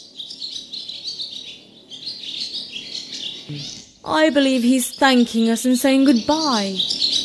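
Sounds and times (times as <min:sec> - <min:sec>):
small bird singing in high chirps and trills: 0:00.0 - 0:07.2
speech: 0:03.5 - 0:07.0.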